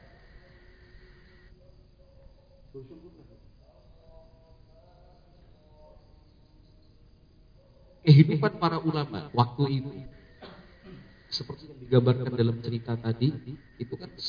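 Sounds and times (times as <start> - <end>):
crickets and other night insects chirping: 0.0 - 14.2
speech: 2.8 - 3.5, 8.1 - 10.2, 11.3 - 14.2.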